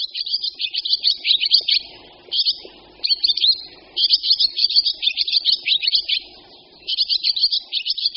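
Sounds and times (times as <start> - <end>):
barn swallow twittering song: 0.0 - 8.1.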